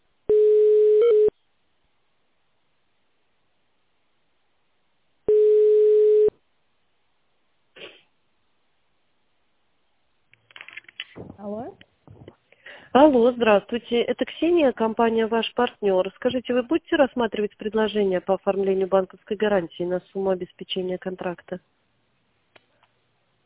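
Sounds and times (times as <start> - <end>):
short telephone buzzing tone while a call is transferred: 0.3 - 1.3, 5.3 - 6.3
steady telephone line tones while a call is transferred: 5.3 - 6.3
speech: 12.9 - 21.8.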